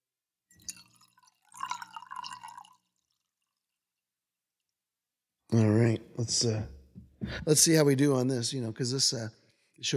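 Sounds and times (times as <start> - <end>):
Cabernet wine glugging and splashing into a glass: 0.6 - 3.7
speech: 6.2 - 9.9.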